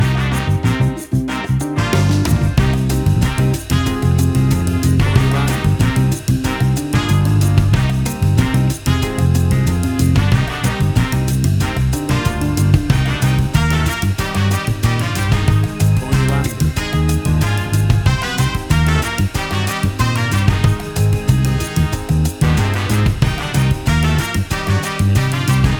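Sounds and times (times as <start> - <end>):
acid jazz bossa nova fusion music: 0.0 - 25.7.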